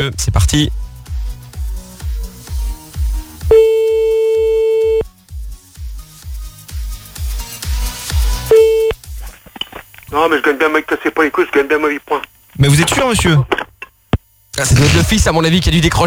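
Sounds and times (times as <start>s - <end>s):
speech: 0.0s - 0.8s, 10.2s - 13.6s, 14.6s - 16.0s
low thumping beat: 0.2s - 5.4s
telephone busy tone after the caller hung up: 3.5s - 5.0s, 8.5s - 9.0s.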